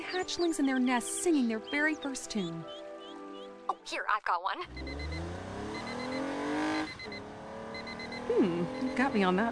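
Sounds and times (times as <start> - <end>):
speech: 0.1 - 2.8, 3.9 - 5.2, 8.3 - 9.5
new Toyota car engine revving while cruising the open road: 4.6 - 9.5.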